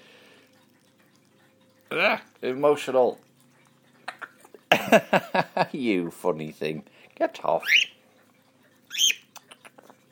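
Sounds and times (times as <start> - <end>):
speech: 1.9 - 3.3, 4.9 - 8.0
pet bird squawking and chirping: 7.6 - 8.0, 8.9 - 9.3.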